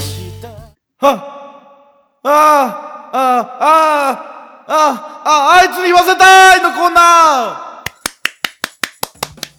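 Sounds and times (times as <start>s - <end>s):
speech: 1.0s - 1.3s, 2.2s - 7.7s
hands clapping: 7.9s - 9.5s.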